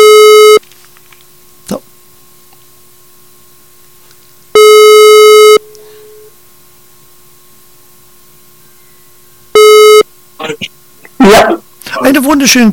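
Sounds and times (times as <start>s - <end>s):
telephone ringback tone from an outgoing call to an editorial office: 0.0s - 0.6s, 4.6s - 6.3s, 9.6s - 10.1s
speech: 12.3s - 12.7s.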